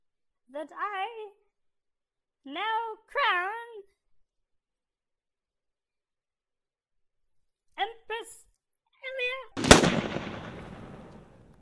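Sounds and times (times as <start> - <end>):
speech: 0.5 - 1.5, 2.4 - 3.9, 7.8 - 8.4
gunshot ringing out through a crowd: 9.6 - 11.5.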